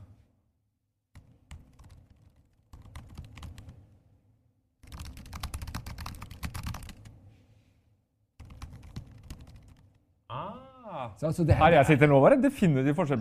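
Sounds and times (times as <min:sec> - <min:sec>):
rapid typing on MacBook Air and Pro keyboards: 0:01.1 - 0:03.8, 0:04.8 - 0:07.1, 0:08.4 - 0:10.0
speech: 0:10.9 - 0:13.1.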